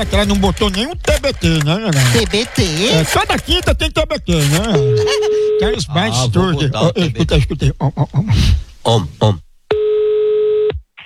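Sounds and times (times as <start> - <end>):
speech: 0.0 - 9.4
laughter: 4.4 - 5.8
telephone dial tone while placing a call: 9.7 - 10.8.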